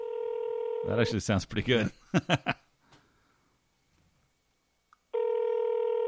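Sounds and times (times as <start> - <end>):
phone ringing tone on speakerphone during an outgoing call: 0.0 - 1.0, 5.1 - 6.0
speech: 0.8 - 2.6.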